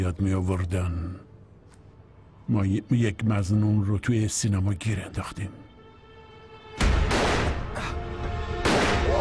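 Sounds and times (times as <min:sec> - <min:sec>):
speech: 0:00.0 - 0:01.2, 0:02.5 - 0:05.6
sharp loud gunshots with short tail: 0:06.8 - 0:07.6, 0:08.6 - 0:09.1.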